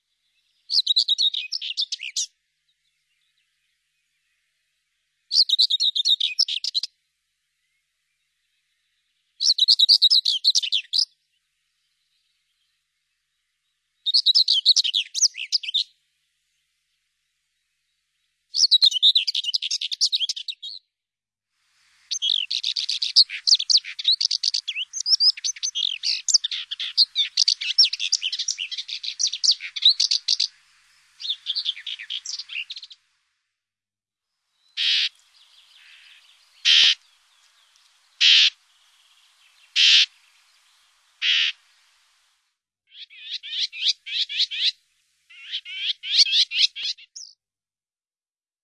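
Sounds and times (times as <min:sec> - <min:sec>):
common whitethroat singing: 0:00.5 - 0:02.3, 0:05.3 - 0:06.9, 0:09.4 - 0:11.2, 0:14.0 - 0:16.0, 0:18.5 - 0:20.8, 0:22.0 - 0:33.0, 0:34.6 - 0:42.1, 0:42.9 - 0:47.4.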